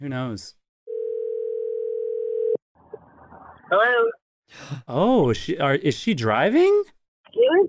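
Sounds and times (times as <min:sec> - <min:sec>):
speech: 0:00.0 - 0:00.6, 0:03.7 - 0:07.6
telephone ringing tone: 0:00.9 - 0:02.6.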